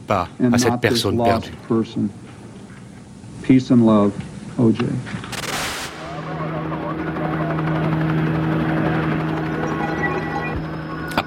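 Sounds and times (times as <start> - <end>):
television news helicopters flying over Los Angeles: 0.0 - 11.2
speech: 0.1 - 2.2, 3.5 - 5.3
short burst of broadband noise: 5.2 - 11.0.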